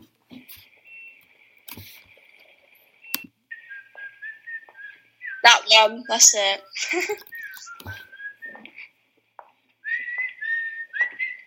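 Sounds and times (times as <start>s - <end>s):
whistled film theme tune played back: 3.0s - 8.9s, 9.8s - 11.4s
speech: 5.4s - 7.3s.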